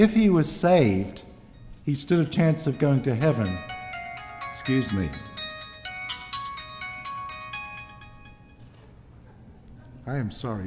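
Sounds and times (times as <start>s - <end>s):
speech: 0.0s - 3.8s, 4.5s - 5.3s, 10.1s - 10.6s
cell phone ringing with a bright electronic melody: 2.1s - 8.8s.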